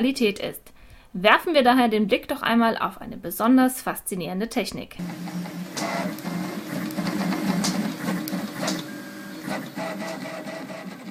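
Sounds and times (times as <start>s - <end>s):
speech: 0.0s - 6.3s
print head clicks and short rising tones: 5.0s - 11.0s.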